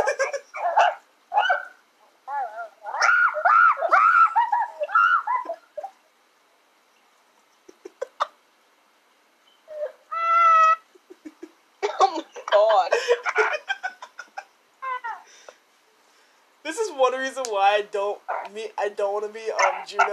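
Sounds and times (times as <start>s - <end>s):
laughter: 0.0s - 0.6s, 7.7s - 8.4s, 11.0s - 14.5s
dog yowling and whining: 0.0s - 6.0s, 9.6s - 10.9s, 14.8s - 15.3s, 19.6s - 20.1s
dog howling: 0.6s - 5.9s, 9.7s - 10.8s
speech: 17.8s - 20.1s.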